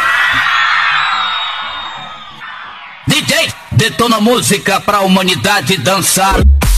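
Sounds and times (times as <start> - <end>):
loud crowd yelling and whooping: 0.0 - 4.7
speech: 3.1 - 6.6.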